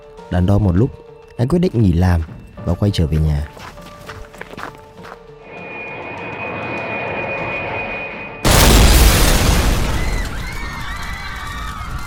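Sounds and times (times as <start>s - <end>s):
speech: 0.3s - 3.7s
high-pitched jet engine whine of a hijacked airliner: 5.4s - 8.6s
loud explosive impact of an airliner crashing into the World Trade Center: 8.4s - 10.8s.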